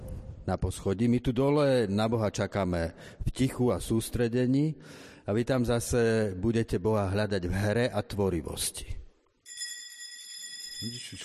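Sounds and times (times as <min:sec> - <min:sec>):
speech: 0:00.5 - 0:09.0, 0:10.8 - 0:11.2
small bell ringing to call children upstairs: 0:09.4 - 0:11.2.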